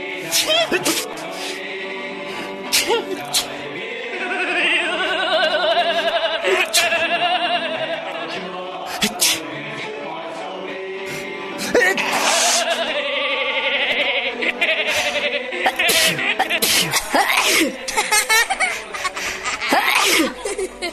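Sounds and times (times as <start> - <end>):
laughter: 0.0 - 1.6, 2.6 - 9.8, 11.6 - 20.9
many people sneezing: 0.1 - 1.7, 2.3 - 3.7, 6.4 - 7.1, 8.3 - 9.6, 11.0 - 13.0, 14.5 - 20.8.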